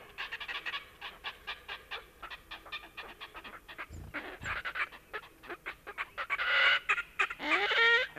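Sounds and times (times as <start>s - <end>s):
red-necked grebe giving harsh pulsed bellowing call from played-back recording: 0.2s - 8.1s.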